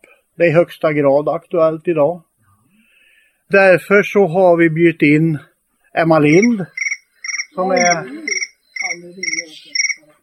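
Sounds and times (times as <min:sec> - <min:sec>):
speech: 0:00.4 - 0:02.3, 0:03.5 - 0:06.8, 0:07.6 - 0:08.2
shrill grasshopper-like chirping: 0:06.2 - 0:10.1.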